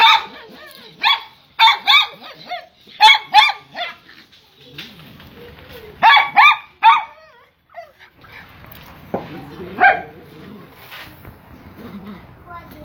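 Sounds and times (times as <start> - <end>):
poodle barking with high yappy barks: 0.0 - 4.0, 6.0 - 7.2, 9.8 - 10.1.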